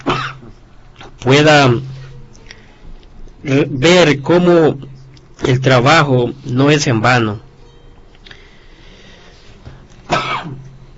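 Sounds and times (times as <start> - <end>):
person with a sore throat coughing: 0.0 - 0.6, 10.1 - 10.6
soft throat-clearing rasp: 0.0 - 0.6, 10.1 - 10.7
speech: 1.2 - 1.9, 3.4 - 7.5.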